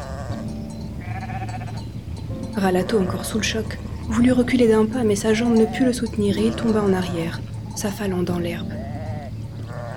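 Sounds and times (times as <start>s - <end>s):
low rumble of flock movement: 0.0s - 9.9s
flock of sheep bleating: 1.0s - 1.8s, 6.4s - 7.2s, 8.7s - 9.9s
speech: 2.6s - 8.8s.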